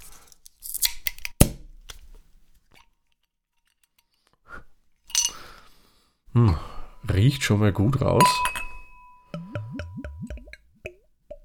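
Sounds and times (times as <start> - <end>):
speech: 6.4 - 8.6
non-alcoholic beer bottle opened by its ceramic swing-top stopper: 8.2 - 11.4.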